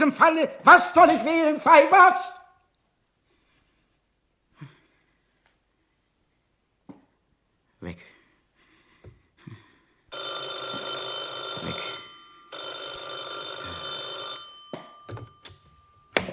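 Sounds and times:
speech: 0.0 - 2.4, 7.8 - 8.1
telephone bell ringing in long metallic bursts: 10.1 - 16.3.

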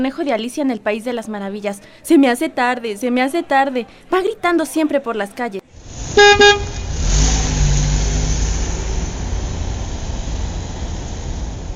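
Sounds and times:
speech: 0.0 - 6.8
engine drone and revving rumble of passing vehicles: 5.7 - 11.7
car horns honking in heavy street traffic: 5.9 - 7.6.

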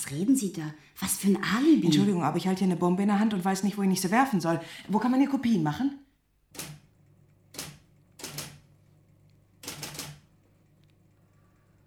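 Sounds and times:
speech: 0.0 - 6.6
typewriter keys clacking in an office: 7.6 - 8.6, 9.6 - 10.2.

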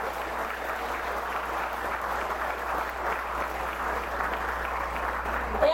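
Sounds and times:
crowd applauding at a gathering of resistance groups: 0.0 - 5.6.

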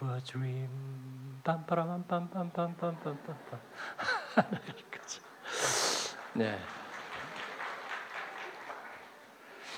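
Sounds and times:
speech: 0.2 - 5.2, 6.4 - 6.8
laughter: 2.8 - 9.0
audience applauding after a song: 3.2 - 9.7.

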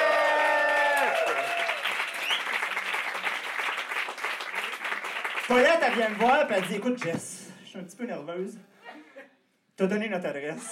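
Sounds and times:
audience applause at a live comedy show: 0.0 - 6.9
speech: 5.5 - 8.7, 9.8 - 10.6.

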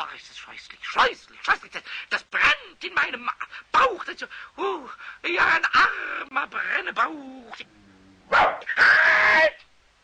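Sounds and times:
speech: 0.1 - 9.7
large dog barking and bark-howling in a workshop: 8.3 - 8.8.

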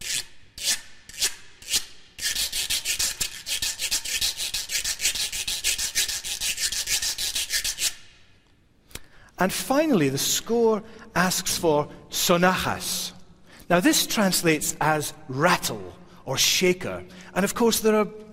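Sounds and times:
guiro grooved scraper scraped with a stick: 0.0 - 8.1
speech: 9.4 - 13.1, 13.7 - 18.3.

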